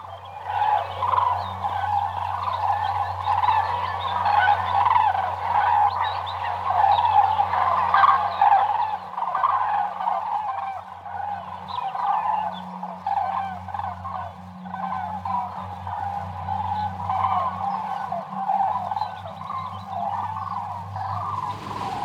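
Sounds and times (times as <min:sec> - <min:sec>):
flock of common cranes bugling in flight: 0:00.0 - 0:22.0
low constant hum: 0:00.0 - 0:22.0.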